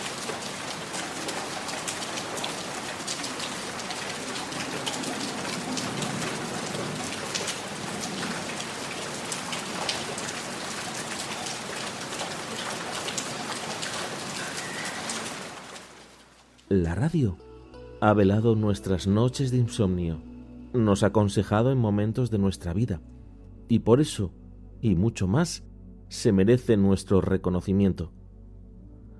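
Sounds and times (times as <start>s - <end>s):
rain pattering on surfaces: 0.0s - 17.1s
speech: 16.8s - 23.1s, 23.7s - 28.2s.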